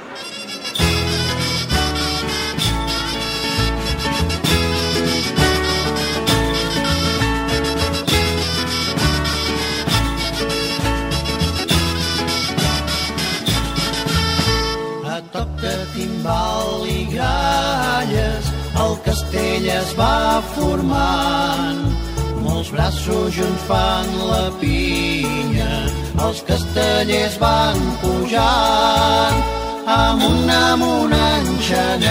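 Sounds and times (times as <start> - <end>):
bright steady instrumental backing: 0.0 - 32.1
Catalan song with sung vocals: 15.0 - 32.1
speech: 22.7 - 32.1.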